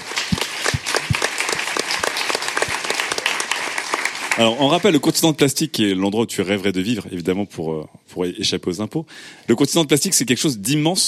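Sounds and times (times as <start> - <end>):
crowd applauding: 0.0 - 5.2
speech: 4.4 - 11.0.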